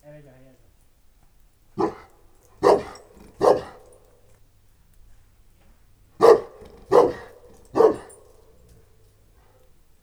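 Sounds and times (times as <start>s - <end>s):
St. Bernard and Moscow Watchdog mix dog barking in a farmyard: 1.8s - 4.0s, 6.2s - 9.5s.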